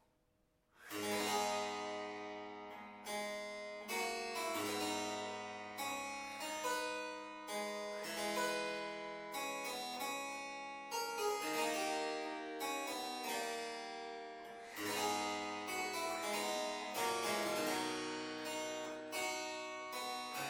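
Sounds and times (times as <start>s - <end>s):
Ruckers single 8 harpsichord: 1.0s - 20.4s.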